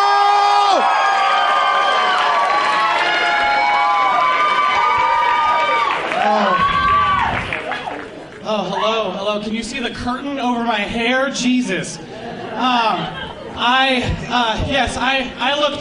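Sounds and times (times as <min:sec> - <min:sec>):
comedy club audience cheering and whooping for a comedian: 0:00.0 - 0:08.8
speech: 0:09.4 - 0:15.7
laughter: 0:12.0 - 0:14.7.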